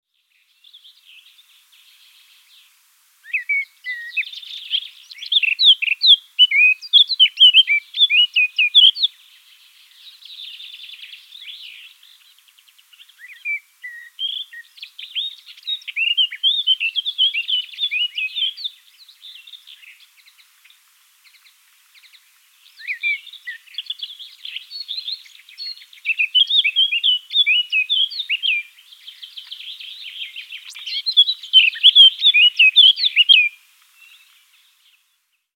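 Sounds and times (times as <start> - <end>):
blackcap singing in Wiesloch: 3.2 - 9.1, 12.9 - 20.2, 22.8 - 34.4.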